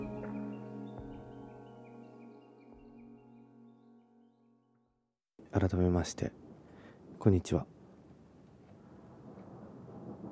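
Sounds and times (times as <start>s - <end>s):
speech: 5.5s - 6.4s, 7.2s - 7.7s
deep rolling rumble of thunder: 8.8s - 10.3s.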